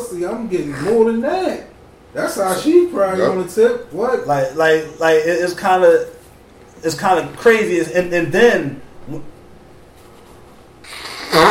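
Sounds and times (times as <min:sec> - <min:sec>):
speech: 0:00.1 - 0:06.2, 0:06.8 - 0:09.3
person blowing their nose: 0:10.8 - 0:11.4.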